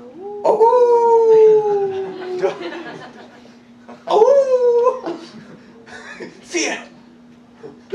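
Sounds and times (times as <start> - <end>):
person mimicking a wolf's howl: 0.0 - 2.6, 4.1 - 5.1
laughter: 1.8 - 3.6, 4.9 - 6.5.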